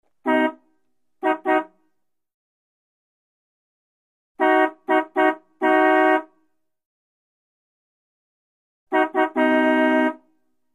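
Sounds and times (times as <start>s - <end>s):
1938 Buick horn honking: 0.2s - 0.6s, 1.2s - 1.7s, 4.4s - 6.3s, 8.9s - 10.3s.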